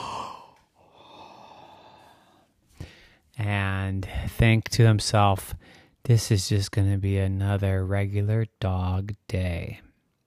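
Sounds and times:
long breathy yawn: 0.0s - 2.4s
speech: 4.4s - 9.8s.

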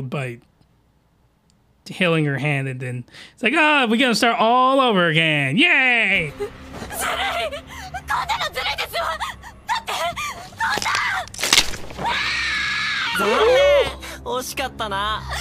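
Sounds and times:
speech: 0.0s - 0.5s, 1.9s - 9.4s, 13.2s - 15.4s
woman screaming in agony: 6.9s - 14.0s.

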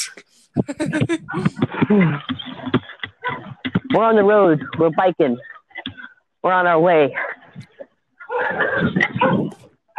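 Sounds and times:
speech: 0.0s - 2.4s, 3.9s - 5.6s, 6.4s - 7.4s, 8.4s - 9.9s
dog giving a drawn-out wavering bark into a yowl: 8.3s - 9.9s.

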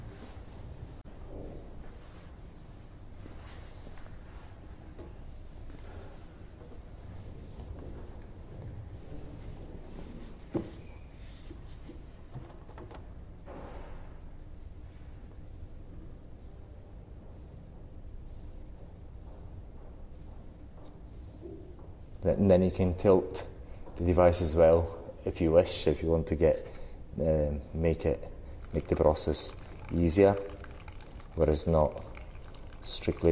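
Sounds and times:
speech: 22.2s - 30.6s, 31.4s - 32.1s, 32.8s - 33.3s
water draining out of a laser device: 28.4s - 33.3s.

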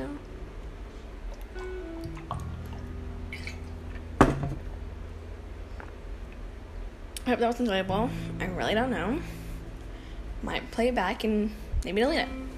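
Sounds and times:
low steady hum: 0.0s - 12.5s
person sipping water from a glass: 1.3s - 3.8s
speech: 7.3s - 9.4s, 10.4s - 12.4s.

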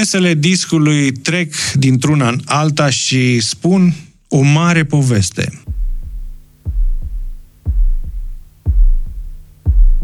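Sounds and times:
speech: 0.0s - 5.8s
deep heartbeat: 5.7s - 10.0s
low hum: 5.7s - 10.0s.

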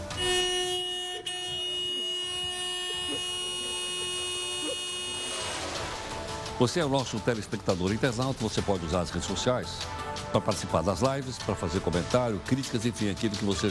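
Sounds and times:
car horn honked by a dog: 0.0s - 6.1s
speech: 6.6s - 13.6s.

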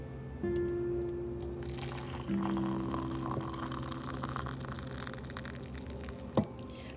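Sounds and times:
low humming tone: 0.0s - 6.9s
hot water pouring from a small red teapot into a cup for instant coffee: 1.4s - 6.7s.

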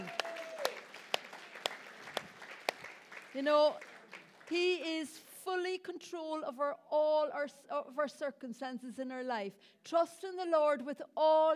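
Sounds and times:
audience clapping: 0.0s - 4.8s
speech: 3.4s - 3.9s, 4.5s - 11.5s.

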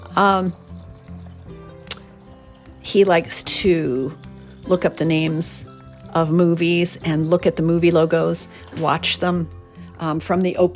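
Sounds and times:
water pouring into a small water bottle: 0.0s - 8.8s
speech: 0.2s - 0.6s, 2.9s - 10.7s.

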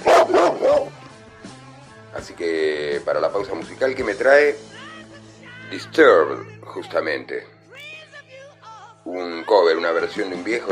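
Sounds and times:
dog barking in reply: 0.0s - 1.0s
speech: 2.3s - 4.7s, 5.7s - 7.6s, 9.1s - 10.7s.

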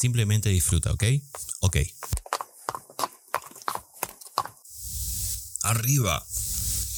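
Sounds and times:
speech: 0.0s - 2.2s, 5.7s - 6.5s
hoofbeats of a saddled mare being led: 0.6s - 4.6s.

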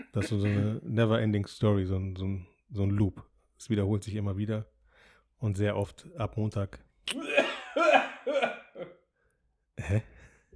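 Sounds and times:
speech: 0.2s - 4.7s, 5.4s - 8.6s, 9.8s - 10.1s
person coughing raspy coughs: 7.1s - 8.9s.

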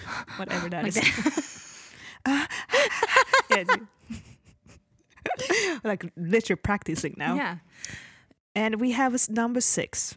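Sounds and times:
person acting out heavy breathing and panting gasps: 0.0s - 3.5s, 5.4s - 5.8s
person moaning: 0.3s - 1.2s
speech: 0.3s - 2.4s, 3.6s - 4.2s, 5.8s - 10.1s
laughter: 0.4s - 1.9s, 2.6s - 5.8s.

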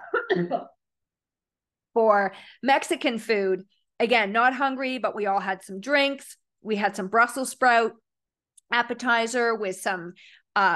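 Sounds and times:
person coughing: 0.0s - 0.8s
speech: 0.3s - 0.7s, 2.0s - 8.0s, 8.7s - 10.7s.

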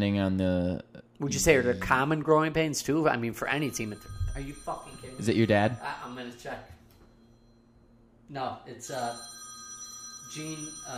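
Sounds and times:
speech: 0.0s - 6.8s, 8.3s - 9.4s, 10.3s - 10.9s
mobile phone ringing with electronic tone: 3.6s - 8.0s, 8.8s - 10.9s.

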